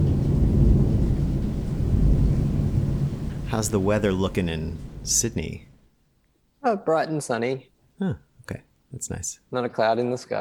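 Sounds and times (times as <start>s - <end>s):
thunder rumbling during a storm: 0.0s - 5.8s
speech: 3.5s - 5.7s, 6.6s - 10.3s.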